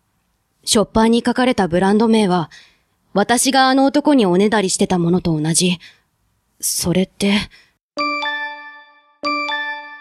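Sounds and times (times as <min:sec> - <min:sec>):
speech: 0:00.7 - 0:06.0, 0:06.6 - 0:08.1
messaging app two-note notification chime: 0:08.0 - 0:09.9.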